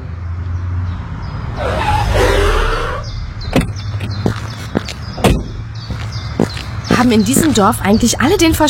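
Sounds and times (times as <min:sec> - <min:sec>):
car driving off: 0:00.5 - 0:06.0
sharp knocks and thumps: 0:03.4 - 0:07.6
speech: 0:07.1 - 0:08.6.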